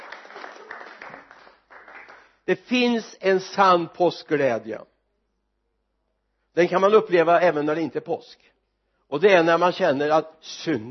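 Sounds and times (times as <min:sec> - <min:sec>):
audience applauding on Easter Day: 0:00.0 - 0:02.4
speech: 0:02.5 - 0:04.9, 0:06.6 - 0:08.5, 0:09.1 - 0:10.8.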